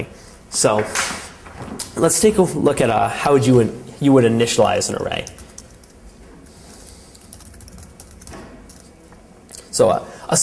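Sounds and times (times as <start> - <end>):
speech: 0.0 - 1.2, 1.9 - 5.4, 9.8 - 10.4
soft typing on a computer keyboard while entering program code: 5.1 - 6.0, 6.7 - 9.0.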